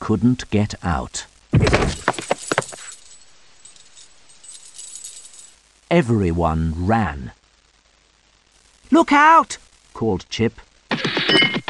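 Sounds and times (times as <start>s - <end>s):
speech: 0.1s - 2.1s, 5.9s - 7.4s, 8.9s - 11.5s
keys jangling and clattering: 1.8s - 5.6s.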